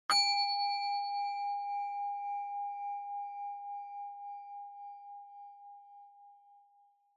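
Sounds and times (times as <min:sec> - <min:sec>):
low long ding: 0:00.1 - 0:03.4.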